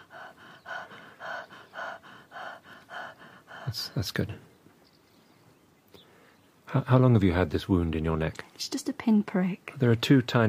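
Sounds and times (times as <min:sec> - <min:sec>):
quick breathing during a medical examination: 0:00.0 - 0:04.1
speech: 0:03.7 - 0:04.5, 0:06.7 - 0:10.4.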